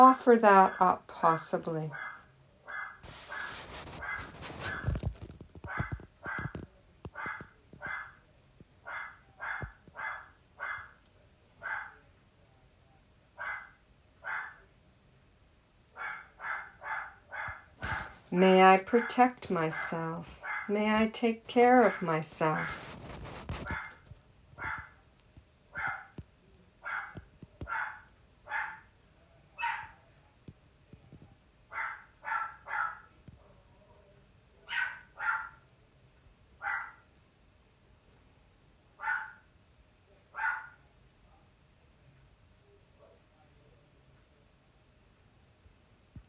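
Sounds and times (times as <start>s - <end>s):
speech: 0.0s - 2.1s, 18.3s - 22.9s
dog barking: 1.9s - 5.0s, 5.7s - 8.2s, 8.8s - 11.0s, 11.6s - 12.0s, 13.4s - 14.6s, 16.0s - 18.1s, 19.0s - 20.8s, 23.6s - 24.0s, 24.6s - 25.0s, 25.7s - 26.2s, 26.8s - 28.9s, 29.6s - 30.0s, 31.7s - 33.1s, 34.6s - 35.6s, 36.6s - 37.1s, 39.0s - 39.5s, 40.3s - 40.8s.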